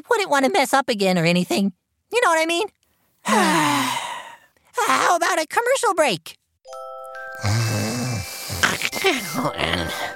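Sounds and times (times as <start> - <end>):
speech: 0.0 - 4.0, 4.8 - 7.8, 9.0 - 10.1
loud rough snoring: 7.4 - 10.1.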